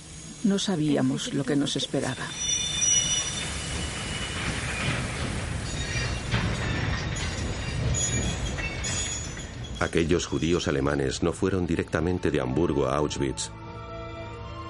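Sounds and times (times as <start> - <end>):
sealed train rolling steadily along the rails: 0.0 - 12.6
speech: 0.4 - 2.5, 9.8 - 13.6
high thin metallic squeals from train wheels: 2.1 - 10.7.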